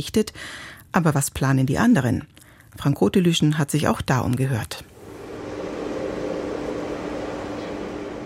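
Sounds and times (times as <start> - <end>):
speech: 0.0 - 4.9
JET experimental magnetic fusion reactor rushing howl with hum: 4.9 - 8.2.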